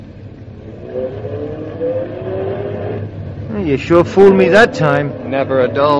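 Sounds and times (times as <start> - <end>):
car engine revving and accelerating hard away from an intersection: 0.2 - 5.9
speech: 3.6 - 5.9.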